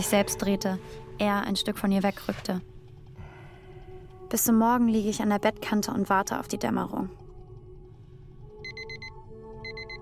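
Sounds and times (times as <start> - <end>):
speech: 0.0 - 2.7, 4.3 - 7.2
alarm clock ringing with rapid high electronic beeps: 8.6 - 10.0.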